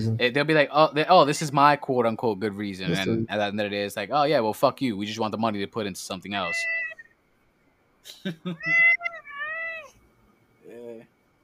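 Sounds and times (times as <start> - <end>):
speech: 0.0 - 6.9, 8.0 - 8.9
cat meowing: 6.4 - 7.1, 8.6 - 10.0
laughter: 8.1 - 8.9.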